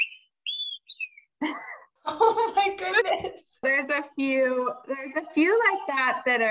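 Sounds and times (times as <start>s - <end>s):
person whistling an imitation of olive-sided flycatcher song: 0.0s - 1.4s
speech: 2.8s - 6.5s.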